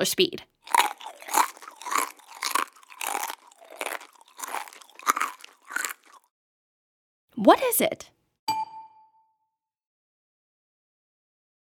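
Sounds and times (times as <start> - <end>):
speech: 0.0 - 0.5, 7.4 - 8.2
chewing crunchy food: 0.6 - 6.3.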